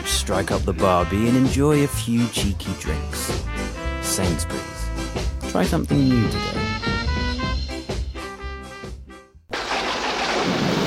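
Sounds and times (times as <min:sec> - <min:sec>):
tuneful music: 0:00.0 - 0:09.4
speech: 0:00.2 - 0:04.8, 0:05.5 - 0:06.8
loud steady downpour of rain: 0:09.5 - 0:10.8.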